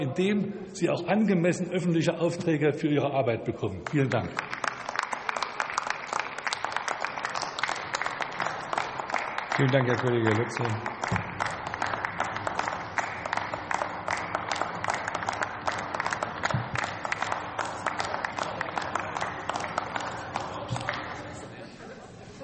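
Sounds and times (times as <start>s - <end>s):
speech: 0.0s - 4.6s, 9.6s - 11.2s
members applauding enthusiastically in a parliament session: 3.8s - 21.6s.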